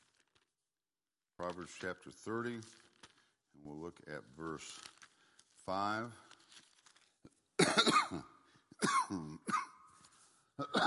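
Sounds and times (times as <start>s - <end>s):
speech: 1.4s - 2.9s, 3.6s - 4.9s, 5.6s - 6.3s, 7.8s - 8.3s, 9.1s - 9.6s, 10.6s - 10.8s
person with acute bronchitis coughing: 7.6s - 9.8s, 10.6s - 10.8s.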